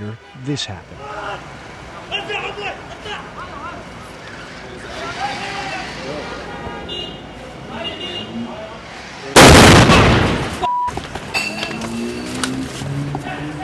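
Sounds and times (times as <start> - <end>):
speech: 0.0 - 1.0
people shouting: 1.0 - 1.5
armored car exploding from sticky bomb: 9.4 - 10.6.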